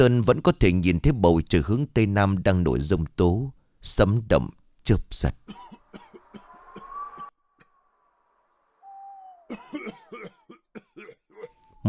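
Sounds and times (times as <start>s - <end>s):
speech: 0.0s - 5.7s
old monk coughing in rough dry bursts: 5.5s - 6.9s, 9.5s - 11.6s
soft hooting tone: 5.7s - 9.7s.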